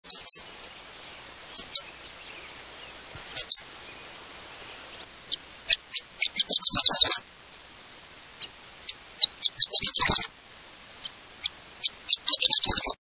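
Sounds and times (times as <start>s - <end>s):
Horned Lark singing: 0.1s - 7.3s, 8.4s - 10.3s, 11.0s - 13.0s.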